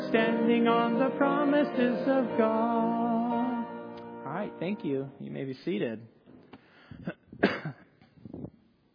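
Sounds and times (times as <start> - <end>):
speech: 0.1 - 3.1, 4.6 - 6.1
person clearing throat: 7.0 - 8.0
person coughing: 7.0 - 8.0.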